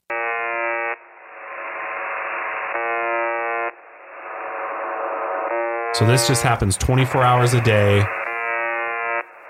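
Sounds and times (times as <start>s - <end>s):
harsh buzzer tone over a radio signal: 0.0s - 1.1s, 2.6s - 3.8s, 5.2s - 9.4s
radio static hiss: 0.0s - 9.4s
speech: 6.0s - 8.2s.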